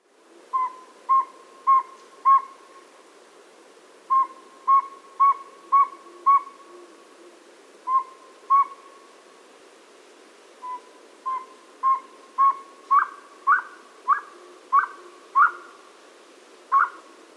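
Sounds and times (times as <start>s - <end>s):
boreal owl whistled hoots: 0.5s - 2.6s, 4.1s - 6.8s, 7.9s - 8.9s, 10.6s - 15.8s, 16.7s - 17.1s.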